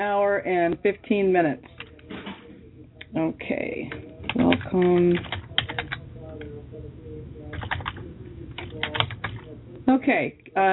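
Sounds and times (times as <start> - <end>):
speech: 0.0 - 1.7, 3.2 - 5.4, 9.9 - 10.7
rapid typing on a computer keyboard: 3.9 - 6.5, 7.5 - 8.0, 8.6 - 9.5.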